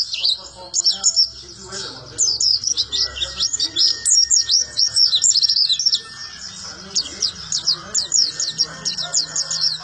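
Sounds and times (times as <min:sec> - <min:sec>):
white-eye song: 0:00.0 - 0:09.8.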